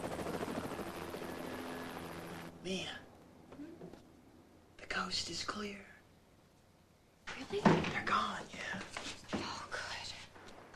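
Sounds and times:
helicopter flying: 0.0 - 3.5
speech: 2.6 - 3.0, 5.0 - 5.9, 7.4 - 9.2.

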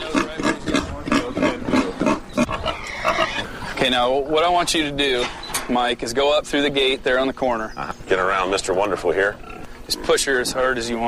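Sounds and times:
boar pig grunting and squealing while driven down a farm alley: 0.0 - 3.8, 9.3 - 10.2
speech: 3.8 - 11.0.

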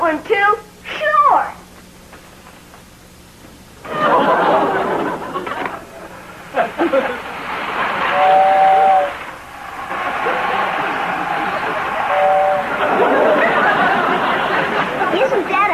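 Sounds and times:
speech: 0.1 - 0.7
laughter: 3.9 - 8.6, 9.5 - 15.6
toy electric train whistle toots: 8.1 - 9.3, 12.0 - 12.9.

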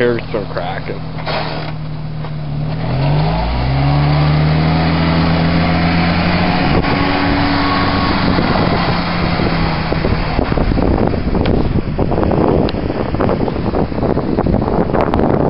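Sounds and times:
speech: 0.0 - 1.8
car engine droning and speeding up: 0.0 - 15.4.

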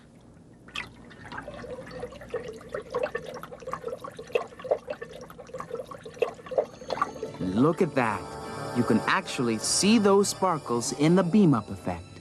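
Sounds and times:
water sloshing and swirling in a tank: 0.0 - 8.0
speech: 7.6 - 12.1.

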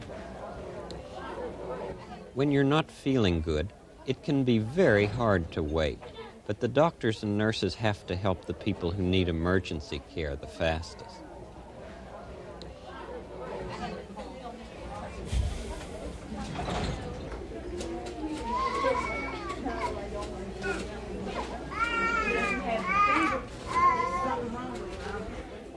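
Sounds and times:
murmur of chatter and voices: 0.0 - 25.7
speech: 2.4 - 11.2
children crying and wailing in a hospital waiting room: 18.4 - 19.7.

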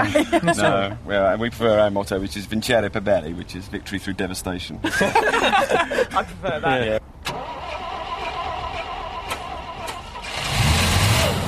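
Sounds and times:
laughter: 0.0 - 0.9, 4.8 - 7.0
speech: 0.0 - 7.4
big truck engine without prop shaft cranking, starting and running: 7.0 - 11.4.

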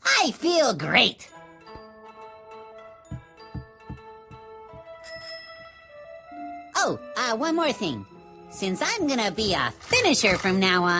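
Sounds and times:
speech: 0.2 - 1.4, 6.8 - 10.9
soft rhythmic low thumps: 3.1 - 5.0
bicycle bell ringing: 5.0 - 5.8.

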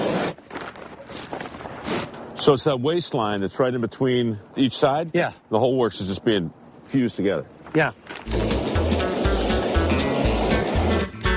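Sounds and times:
speech: 2.4 - 8.5
heat gun blowing on shrink wrap plastic: 8.3 - 11.3.

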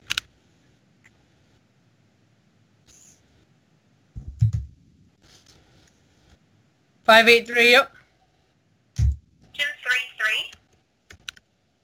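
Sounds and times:
speech: 7.1 - 8.0
typing on a keyboard: 11.1 - 11.5.

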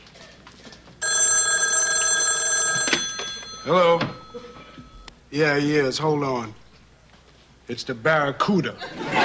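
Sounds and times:
telephone bell ringing with a loud metallic trill: 1.0 - 5.1
speech: 3.6 - 4.2, 5.3 - 6.6, 7.7 - 9.2
laughter: 8.7 - 9.2.

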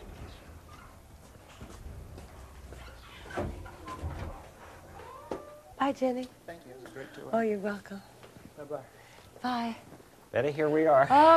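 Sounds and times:
faint room noise: 0.0 - 11.3
door opening and closing: 2.7 - 5.7
speech: 5.9 - 11.3.

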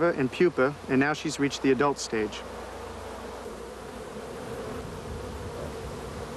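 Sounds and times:
speech: 0.0 - 2.6
many honeybees buzzing together inside a hive: 0.0 - 6.3.

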